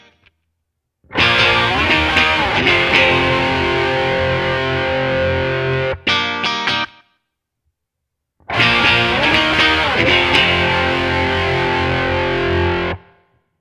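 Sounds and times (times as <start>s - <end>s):
distorted rhythm: 1.2s - 5.8s, 8.6s - 12.8s.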